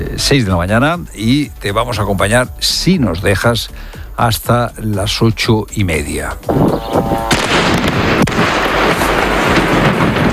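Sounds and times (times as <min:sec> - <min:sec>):
speech: 0:00.2 - 0:09.2
bombs falling and exploding over Lebanon, dropped by Israel: 0:06.5 - 0:10.3
sharp bomb detonation: 0:06.5 - 0:10.3.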